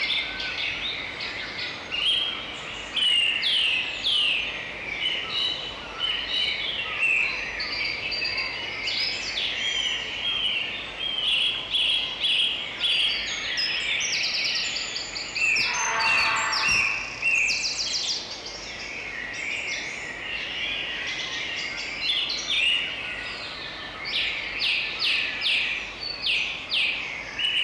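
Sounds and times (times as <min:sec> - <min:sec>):
dawn chorus of many birds singing and chirping beside a brook: 0:00.0 - 0:27.6
brief lower-pitched call: 0:15.5 - 0:17.4.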